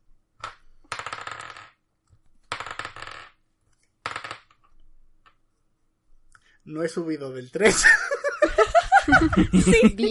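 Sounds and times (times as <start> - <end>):
twenty-sided dice rolling on a hard surface: 0.4 - 5.4
speech: 6.7 - 10.0
laughter: 7.6 - 10.0.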